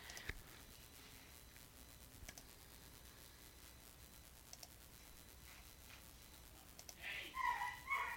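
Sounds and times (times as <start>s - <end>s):
faint scattered clicks: 0.0s - 0.4s, 2.2s - 2.5s, 4.5s - 4.8s, 6.7s - 7.0s
quiet outdoor ambience: 0.0s - 8.1s
prairie dog giving shrill chirping yips: 7.4s - 8.1s.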